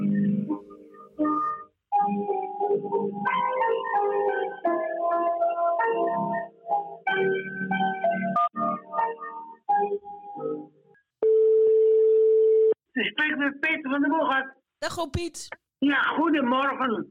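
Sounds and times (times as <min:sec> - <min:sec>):
piano melody heard through a telephone line: 0:00.0 - 0:12.8
speech: 0:14.3 - 0:17.0.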